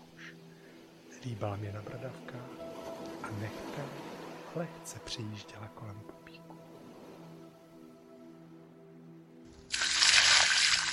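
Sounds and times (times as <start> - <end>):
speech: 1.2 - 2.7, 3.3 - 6.5
cold water thrown from an old tin bucket onto a person: 9.6 - 10.9.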